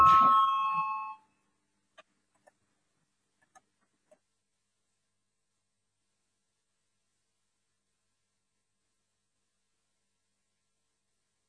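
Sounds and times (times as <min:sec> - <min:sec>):
parliamentary voting bell electronic tone ringing: 0:00.0 - 0:01.2.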